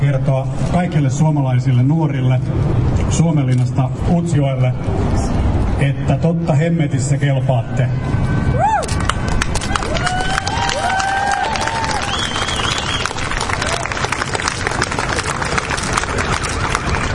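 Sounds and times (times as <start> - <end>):
speech: 0.1 - 8.4
scattered audience cheers: 8.5 - 17.1
large audience applause at an event for Finnish young people: 9.0 - 17.1
audience whistles: 11.9 - 13.3.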